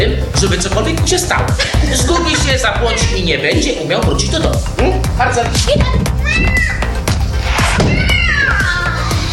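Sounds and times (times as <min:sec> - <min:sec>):
speech: 0:00.2 - 0:06.9
laughter: 0:01.2 - 0:04.5
dull thumps: 0:05.4 - 0:08.6
cat meowing: 0:06.2 - 0:07.0, 0:07.6 - 0:09.2.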